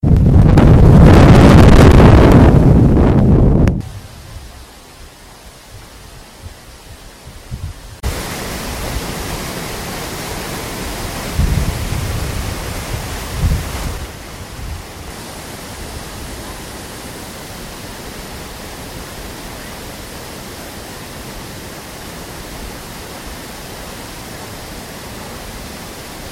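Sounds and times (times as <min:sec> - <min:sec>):
Iguazu Falls waterfall: 0:00.0 - 0:26.3.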